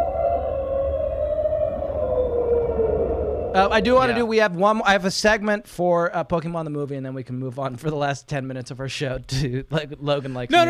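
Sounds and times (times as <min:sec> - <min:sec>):
mournful creature cry: 0:00.0 - 0:04.3
low rumbling backdrop: 0:00.0 - 0:04.5
speech: 0:03.6 - 0:10.6.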